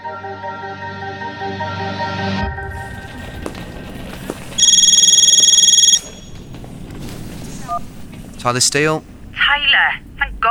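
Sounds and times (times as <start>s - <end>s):
low humming drone: 0.0s - 10.4s
rustling: 3.0s - 10.4s
telephone ringing with a warbling electronic trill: 4.6s - 6.5s
speech: 7.8s - 10.4s.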